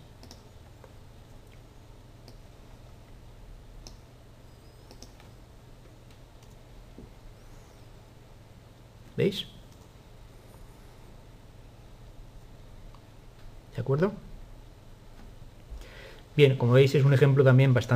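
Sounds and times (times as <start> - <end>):
steady low electrical hum: 0.0 - 17.9
soft computer mouse clicks: 0.2 - 1.6, 2.2 - 2.5, 3.8 - 4.0, 4.8 - 5.4, 6.1 - 6.6
speech: 9.2 - 9.6, 13.9 - 14.2, 16.4 - 17.9.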